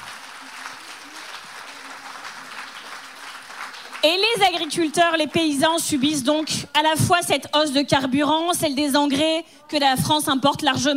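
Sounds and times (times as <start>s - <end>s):
crowd clapping: 0.0s - 6.9s
speech: 4.0s - 10.9s.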